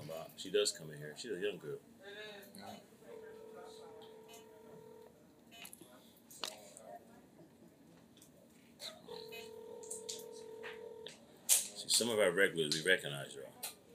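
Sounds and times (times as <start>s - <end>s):
speech: 0.4s - 2.9s, 12.0s - 13.7s
unanswered phone ringback tone: 3.1s - 5.1s, 9.1s - 11.1s.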